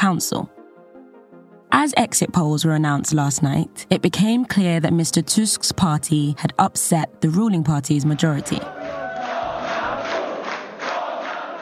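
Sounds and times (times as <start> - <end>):
speech: 0.0 - 0.6, 1.8 - 8.8
large crowd of supporters in Poland chanting after election exit polls: 8.2 - 11.5.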